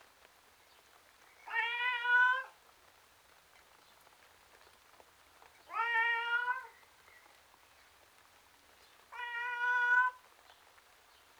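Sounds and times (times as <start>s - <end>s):
tom cat meowing outside: 1.5s - 2.5s, 5.7s - 6.7s, 9.2s - 10.2s.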